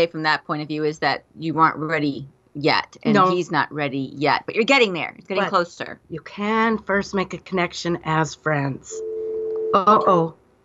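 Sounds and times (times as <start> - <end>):
speech: 0.0 - 9.1, 9.7 - 10.4
voice-like sound: 2.9 - 3.5, 9.8 - 10.3
telephone dial tone: 9.0 - 9.8.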